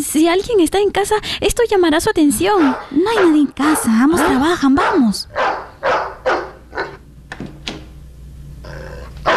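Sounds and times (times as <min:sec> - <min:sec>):
speech: 0:00.2 - 0:05.5
dog barking: 0:02.5 - 0:07.0
whiny growling sound: 0:08.6 - 0:09.2.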